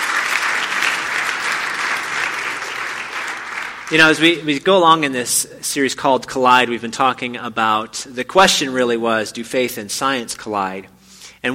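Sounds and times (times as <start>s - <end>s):
large audience clapping: 0.0s - 4.4s
speech: 3.9s - 11.5s.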